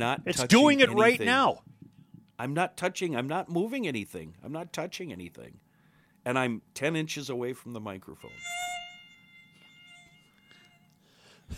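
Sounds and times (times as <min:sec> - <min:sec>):
speech: 0:00.0 - 0:01.7, 0:02.4 - 0:05.6, 0:06.2 - 0:08.6
high-pitched mosquito whine: 0:08.2 - 0:10.9.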